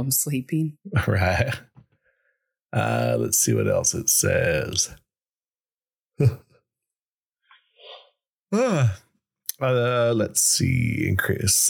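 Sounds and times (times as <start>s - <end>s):
speech: 0.0s - 1.7s, 2.7s - 5.0s, 6.2s - 6.4s, 8.5s - 9.0s, 9.6s - 11.6s
person yawning: 6.2s - 6.4s, 8.5s - 9.0s.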